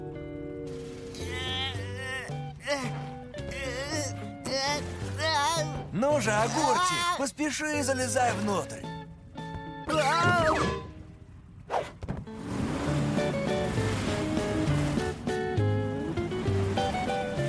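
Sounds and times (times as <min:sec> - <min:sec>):
music with tonal effects: 0:00.0 - 0:17.4
speech: 0:06.1 - 0:08.9
rough stormy sea waves crashing: 0:12.3 - 0:17.4.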